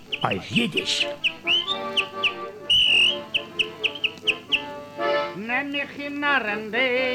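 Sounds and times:
faint sounds: 0.0 - 7.1
speech: 0.2 - 2.1, 5.4 - 7.1
man whistling a bouncy tune: 1.2 - 4.7.

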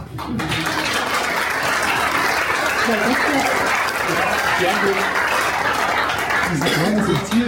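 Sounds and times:
large studio audience applause: 0.0 - 7.4
studio audience laughing: 0.7 - 7.4.

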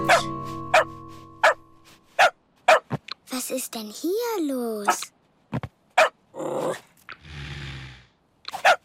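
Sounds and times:
dog yipping: 0.1 - 1.6, 2.2 - 2.9, 8.5 - 8.8
speech: 3.7 - 5.1.

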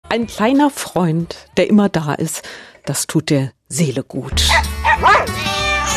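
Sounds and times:
speech: 0.1 - 4.8
dog barking and yipping: 4.5 - 5.8.

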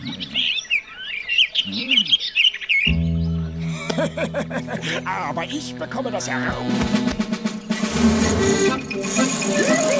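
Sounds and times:
speech: 0.0 - 0.6, 4.0 - 7.3, 8.0 - 9.9
birds chirping and tweeting: 0.0 - 9.9
laughter: 3.6 - 5.4, 8.4 - 9.9.

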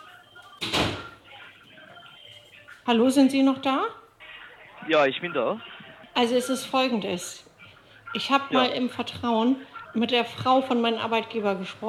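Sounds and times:
door shutting with a solid thud: 0.6 - 1.1
speech: 2.9 - 4.0, 4.8 - 7.5, 8.1 - 11.8.

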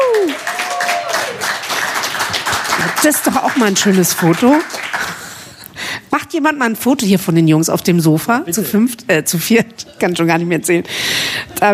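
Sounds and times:
audience applauding a ragtime band: 0.0 - 5.5
speech: 3.0 - 4.9, 6.4 - 11.7.

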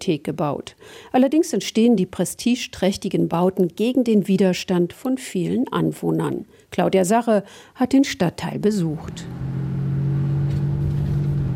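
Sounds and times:
speech: 0.0 - 9.4
old worn-out car engine droning with roaring exhaust while driven: 9.0 - 11.5.

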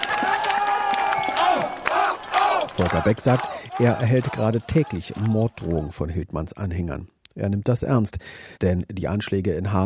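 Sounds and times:
large crowd jeering and cheering approval: 0.0 - 6.0
speech: 2.8 - 9.8.

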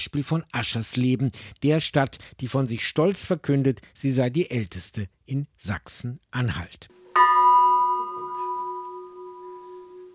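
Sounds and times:
speech: 0.0 - 7.0
deep church bell strike in Aschersleben Saxony-Anhalt Germany: 7.2 - 10.1.

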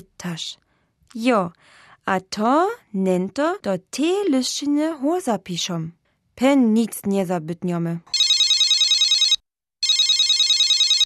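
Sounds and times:
speech: 0.0 - 8.2
telephone ringing with electronic trill: 8.1 - 11.0.

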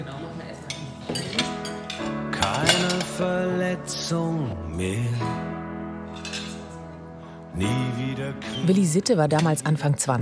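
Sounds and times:
ceramic plates clinking as they are handled: 0.6 - 3.3, 6.1 - 6.9
speech: 3.2 - 5.5, 7.6 - 10.2.

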